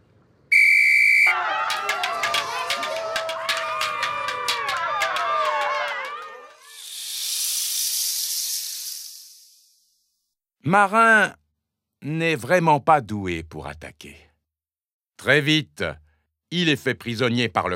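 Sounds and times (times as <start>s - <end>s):
whistle blast signalling the start of a mock fight with wooden swords: 0.5s - 1.4s
many excited voices shouting: 1.3s - 6.6s
broad rushing hiss: 6.6s - 10.0s
speech: 10.7s - 11.4s, 12.0s - 14.3s, 15.2s - 17.7s.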